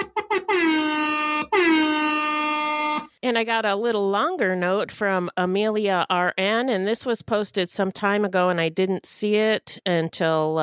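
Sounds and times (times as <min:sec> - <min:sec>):
hip-hop air horn sound effect blasts: 0:00.0 - 0:03.1
speech: 0:03.2 - 0:10.6.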